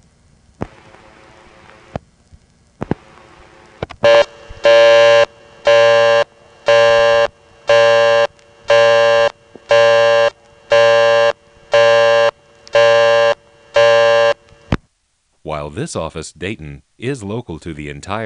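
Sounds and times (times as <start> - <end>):
telephone busy signal tone bursts with a faint buzzy edge: 4.0 - 14.4
speech: 15.7 - 18.2.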